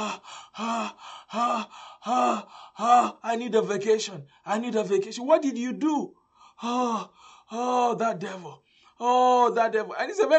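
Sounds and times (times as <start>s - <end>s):
voice performing exaggerated tired panting: 0.0s - 3.2s
speech: 0.0s - 10.3s.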